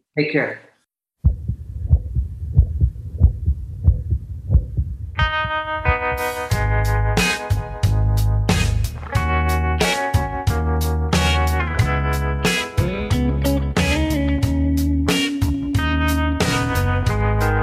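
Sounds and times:
speech: 0:00.2 - 0:00.7
heartbeat: 0:01.2 - 0:06.8
music with bright tones and strong percussion: 0:05.2 - 0:10.5, 0:11.2 - 0:13.2, 0:13.8 - 0:17.3.

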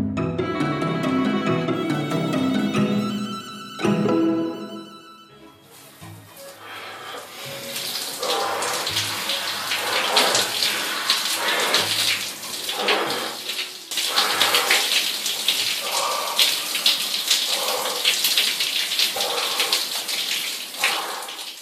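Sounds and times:
short tonal music: 0:00.0 - 0:06.7
cold shower spray of water splashing down: 0:05.6 - 0:21.6.

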